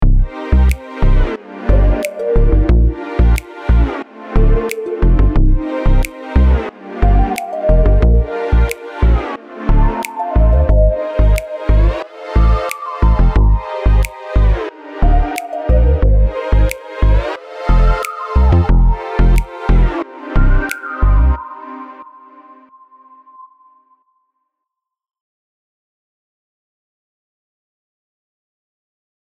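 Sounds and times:
bending chord: 0.1s - 22.6s.

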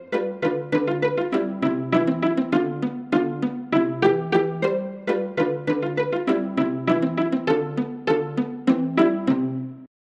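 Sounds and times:
viola pizzicato: 0.0s - 9.9s.

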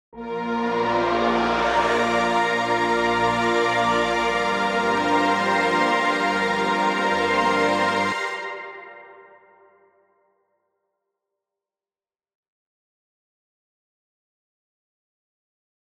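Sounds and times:
shimmer pad synth: 0.9s - 9.3s.

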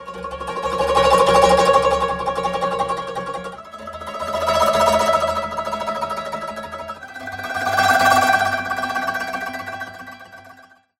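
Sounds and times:
koto trill effect: 0.0s - 10.8s.

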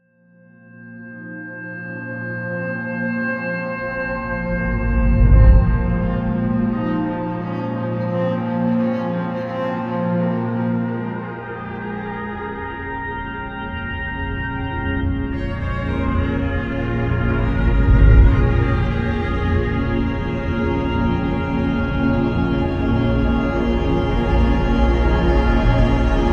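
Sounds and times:
celtic atmospheric music: 0.5s - 26.3s.

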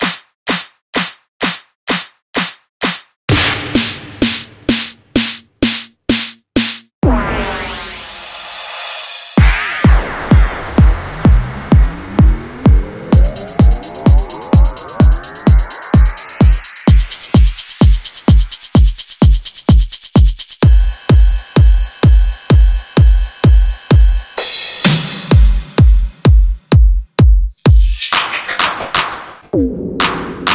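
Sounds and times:
drums: 0.0s - 7.2s, 7.9s - 30.5s.

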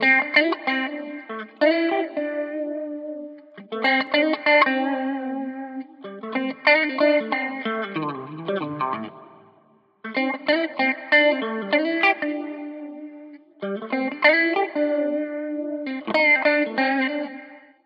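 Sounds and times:
wet guitar with watery phasing effect: 0.0s - 17.6s.

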